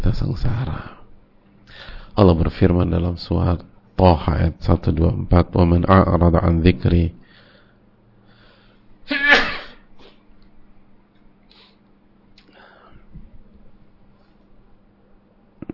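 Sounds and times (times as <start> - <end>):
speech: 0.1 - 1.0, 1.7 - 7.2
person sneezing: 9.1 - 10.2.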